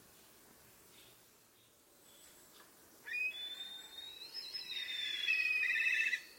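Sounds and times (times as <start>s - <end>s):
soft background hiss: 0.0s - 6.3s
kite giving a drawn-out whistled call ending in a tremulous trill: 3.2s - 6.3s.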